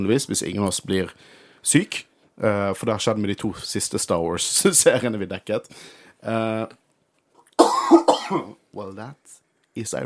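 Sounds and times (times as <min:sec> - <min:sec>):
speech: 0:00.0 - 0:06.8, 0:07.9 - 0:10.0
person coughing: 0:07.6 - 0:08.6
rough throat clearing: 0:07.6 - 0:08.6.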